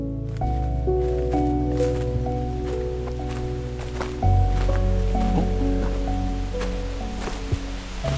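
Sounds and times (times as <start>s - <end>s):
leaves rustling: 0.2s - 8.1s
wind blowing: 0.8s - 8.1s.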